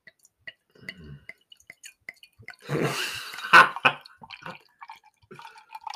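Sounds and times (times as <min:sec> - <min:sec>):
liquid dripping: 0:00.0 - 0:05.9
Saison beer pouring from a 750ml bottle into a glass: 0:02.6 - 0:05.9.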